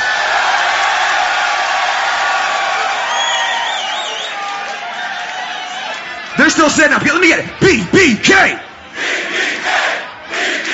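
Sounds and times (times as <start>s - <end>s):
live crowd at a beatbox battle cheering: 0.0s - 10.7s
whistles from crowd: 2.9s - 6.0s
speech: 6.6s - 8.6s.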